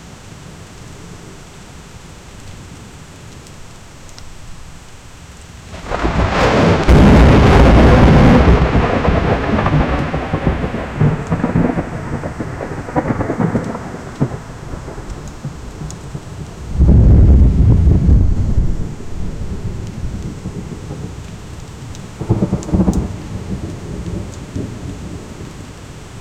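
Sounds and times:
approaching thunderstorm: 5.7s - 26.1s.

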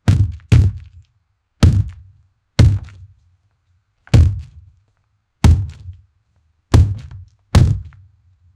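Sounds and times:
heavy greasy thuds: 0.0s - 1.0s, 1.6s - 2.0s, 2.6s - 3.0s, 4.1s - 4.6s, 5.4s - 5.9s, 6.8s - 7.9s.

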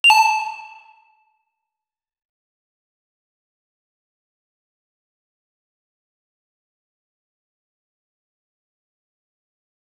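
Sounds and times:
lo-fi game item pickup sound: 0.0s - 0.9s.

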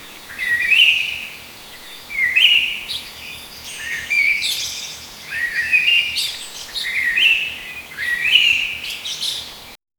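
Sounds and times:
birds chirping in a forest: 0.0s - 9.8s.

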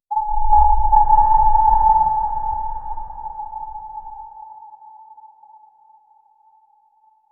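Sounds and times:
nuclear submarine interior: 0.1s - 4.3s.

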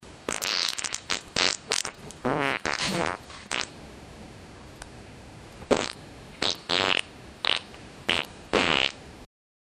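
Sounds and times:
big rumbly wet farts: 0.3s - 3.7s, 5.7s - 9.0s.

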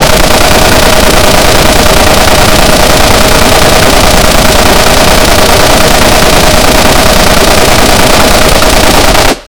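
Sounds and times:
gun: 0.0s - 9.4s.

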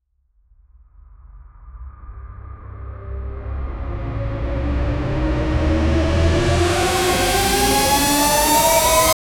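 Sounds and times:
action trailer riser: 2.8s - 9.2s.

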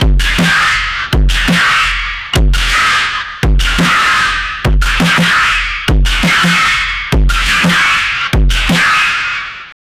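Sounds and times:
distorted VHS post-apocalyptic rave music: 0.0s - 9.7s.

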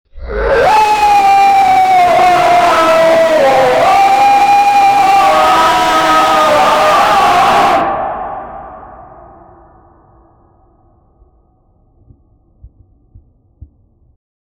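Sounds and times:
frantic screaming in agony: 0.2s - 8.4s.

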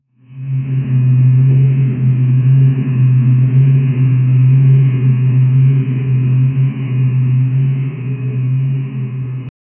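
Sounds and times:
dark dungeon drone: 0.0s - 9.5s.

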